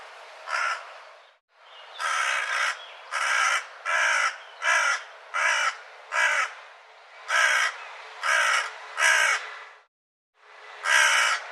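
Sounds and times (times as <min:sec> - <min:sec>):
bird giving harsh raspy caws: 0:00.4 - 0:00.9, 0:01.9 - 0:06.6, 0:07.3 - 0:09.4, 0:10.8 - 0:11.5.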